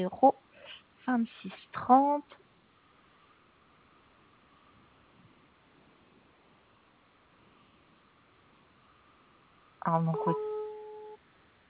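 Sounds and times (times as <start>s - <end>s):
speech: 0.0s - 0.4s, 1.1s - 2.4s, 9.8s - 10.5s
faint phone line hiss: 0.5s - 11.6s
ringing tone beep on an outgoing phone call: 9.9s - 11.2s.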